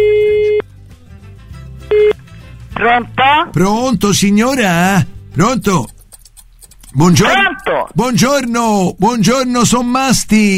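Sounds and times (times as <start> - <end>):
ringback tone on an outgoing telephone call: 1.9 - 2.2
speech: 2.9 - 5.9, 6.9 - 10.5.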